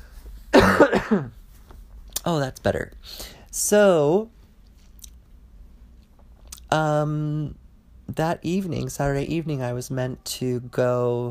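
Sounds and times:
person coughing: 0.5 - 1.4
speech: 0.8 - 1.4, 2.2 - 4.4, 6.7 - 11.3.

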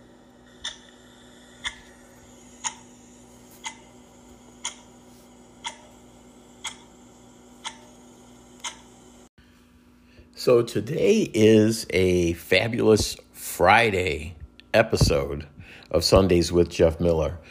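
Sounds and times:
faint constant hum: 0.0 - 17.4
clock ticking: 2.6 - 2.9, 3.6 - 5.0, 5.6 - 6.0, 6.6 - 6.9, 7.6 - 8.0, 8.6 - 8.9
speech: 10.4 - 17.4.

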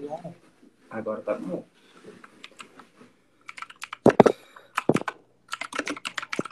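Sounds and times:
speech: 0.1 - 1.8
rapid clattering of computer keyboard keys: 2.2 - 2.8, 3.4 - 6.4.

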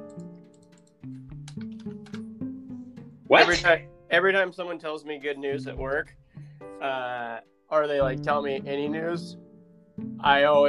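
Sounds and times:
computer keyboard clicks from typing: 0.0 - 2.2
speech: 3.3 - 6.2, 6.8 - 9.4, 10.2 - 10.6.

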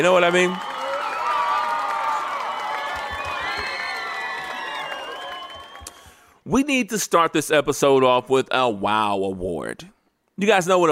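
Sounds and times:
speech: 0.0 - 0.7, 6.5 - 10.9
whoops and shouts: 0.0 - 6.0
crowd cheering and applauding: 0.0 - 6.2.

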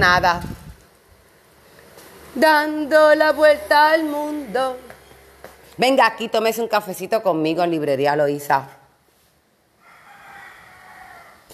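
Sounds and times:
speech: 0.0 - 0.5, 2.4 - 4.9, 5.8 - 8.8
light hiss: 0.0 - 9.7
rooster crowing: 9.8 - 11.5.

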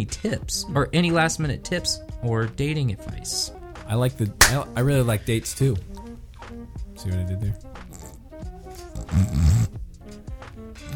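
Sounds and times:
speech: 0.0 - 6.0, 7.0 - 7.7, 9.2 - 9.8
person snoring with a deep guttural rasp: 9.0 - 9.7.

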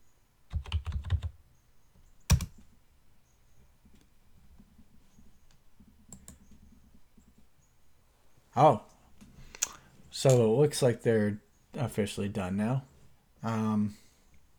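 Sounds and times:
computer keyboard typing: 0.5 - 1.4, 2.3 - 2.6, 6.1 - 6.6
speech: 8.6 - 8.9, 10.2 - 14.0.

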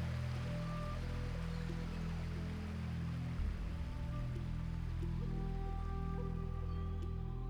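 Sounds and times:
flowing river water: 0.0 - 7.4.

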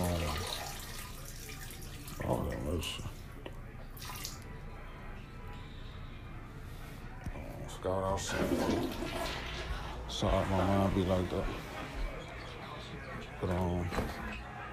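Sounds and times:
water running steadily from a tap: 0.0 - 3.1, 8.3 - 9.9
speech: 2.8 - 3.2, 7.8 - 9.5, 10.2 - 11.7, 13.4 - 14.3.

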